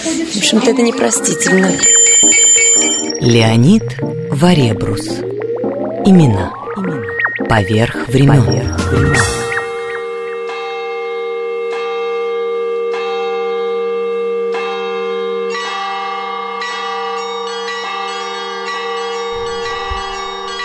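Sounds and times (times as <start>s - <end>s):
Russian church bells ringing in Brussels: 0.0s - 4.6s, 9.2s - 20.6s
speech: 0.0s - 5.4s, 6.0s - 9.4s.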